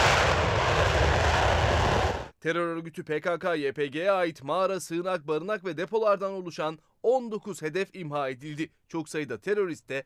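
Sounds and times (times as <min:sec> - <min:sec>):
military fighter jet roaring overhead on an operation in northern Iraq: 0:00.0 - 0:02.3
speech: 0:02.4 - 0:10.0.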